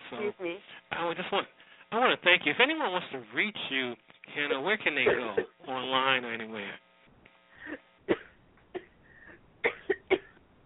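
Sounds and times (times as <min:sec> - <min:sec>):
speech: 0:00.1 - 0:06.8
woman coughing: 0:05.0 - 0:05.6, 0:07.6 - 0:09.0, 0:09.6 - 0:10.4.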